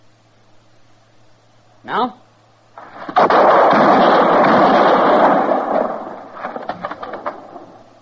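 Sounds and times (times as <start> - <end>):
speech: 1.8 - 2.2
gunfire in a tense standoff: 2.8 - 7.8.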